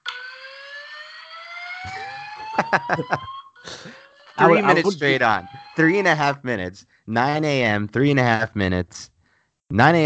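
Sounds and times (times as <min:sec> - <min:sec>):
building alarm siren wailing with rising electronic tone: 0:00.0 - 0:06.3
speech: 0:01.8 - 0:09.1, 0:09.7 - 0:10.0
laughter: 0:01.9 - 0:08.9.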